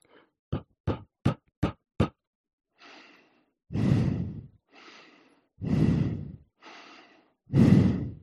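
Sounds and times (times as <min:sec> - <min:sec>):
heavy breathing against a microphone: 0:02.8 - 0:08.2.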